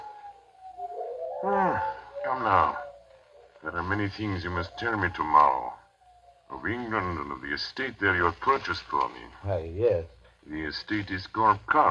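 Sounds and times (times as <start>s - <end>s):
wolf howling: 0.0s - 7.4s
speech: 1.4s - 2.8s, 3.6s - 5.8s, 6.5s - 11.8s.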